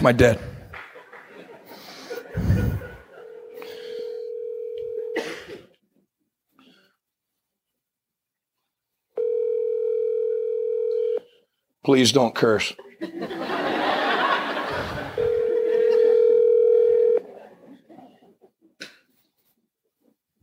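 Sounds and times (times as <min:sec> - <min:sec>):
speech: 0:00.0 - 0:00.5, 0:11.9 - 0:13.5
laughter: 0:00.7 - 0:03.6, 0:12.8 - 0:16.3, 0:17.2 - 0:18.6
steady humming telephone dial tone: 0:03.2 - 0:05.2, 0:09.2 - 0:11.2, 0:15.2 - 0:17.2.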